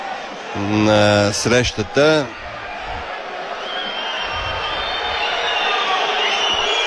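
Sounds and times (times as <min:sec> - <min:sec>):
large stadium crowd roar at a football match: 0:00.0 - 0:06.8
speech: 0:00.6 - 0:02.4
football fans whistling: 0:03.6 - 0:06.8.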